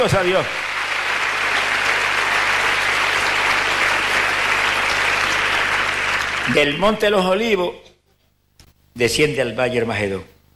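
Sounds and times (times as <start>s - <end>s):
speech: 0.0s - 0.7s, 6.5s - 7.9s, 9.0s - 10.4s
large audience applause: 0.0s - 7.0s.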